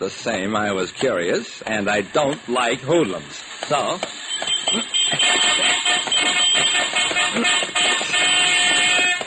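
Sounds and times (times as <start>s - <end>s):
speech: 0.0s - 5.0s
dense traffic rumbling on a busy city street in broad daylight: 0.0s - 9.2s
car horns honking: 4.1s - 9.2s.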